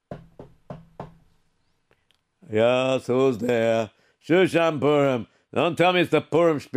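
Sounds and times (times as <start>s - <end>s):
firm knocks on a wooden door on Shushan Purim: 0.0s - 1.3s
speech: 2.5s - 6.7s.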